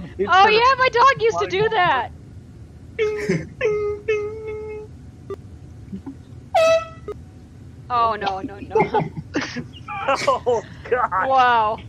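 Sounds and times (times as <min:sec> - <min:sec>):
laughter: 0:00.0 - 0:02.0, 0:03.0 - 0:04.7, 0:08.2 - 0:11.6
speech: 0:00.2 - 0:02.2, 0:03.0 - 0:03.8, 0:07.9 - 0:11.8
air horn blasts: 0:06.6 - 0:07.2.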